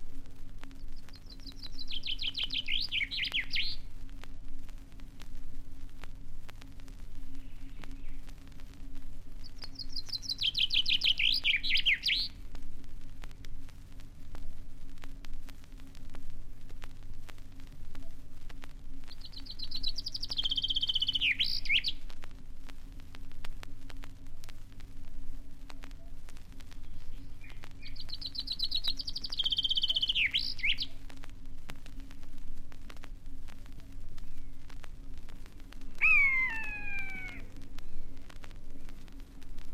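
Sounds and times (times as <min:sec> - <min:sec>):
faint hiss: 0:00.0 - 0:39.7
steady low hum: 0:00.0 - 0:39.7
chaffinch song trills: 0:00.6 - 0:03.9, 0:09.3 - 0:12.4, 0:19.0 - 0:22.1, 0:25.8 - 0:31.1, 0:35.9 - 0:38.9.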